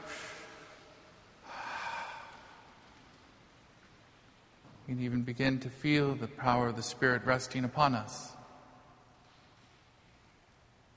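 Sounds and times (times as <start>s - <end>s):
deep breath taken in during a sermon: 1.4s - 2.7s
speech: 4.9s - 8.4s.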